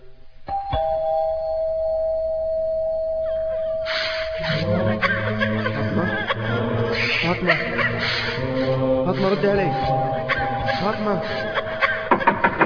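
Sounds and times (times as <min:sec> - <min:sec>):
doorbell ringing with sustained electronic tone: 0:00.5 - 0:04.4
laughter-like sounds: 0:04.4 - 0:08.4, 0:10.2 - 0:12.6
voices: 0:04.4 - 0:11.6
speech: 0:09.2 - 0:11.6.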